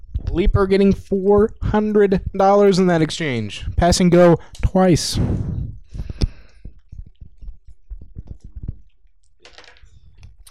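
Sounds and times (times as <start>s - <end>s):
speech: 0.4s - 5.5s
dice rolled on a board: 9.4s - 10.3s.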